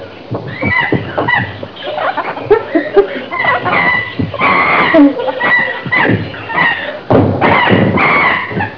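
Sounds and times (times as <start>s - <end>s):
group of monkeys: 0.0s - 8.7s
laughter: 0.6s - 7.7s.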